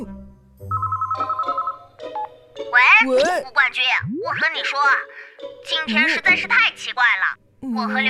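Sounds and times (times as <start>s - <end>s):
phone ringing on an outgoing call: 0.7s - 2.3s
speech: 3.1s - 5.1s, 5.7s - 8.0s.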